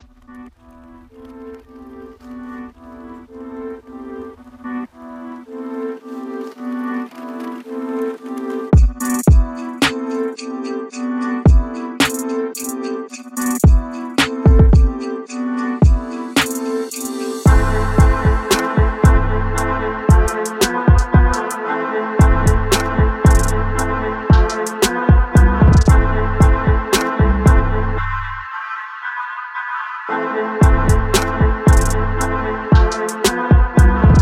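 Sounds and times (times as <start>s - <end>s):
deep trap beat: 8.8s - 21.6s, 22.2s - 28.5s, 30.6s - 34.2s.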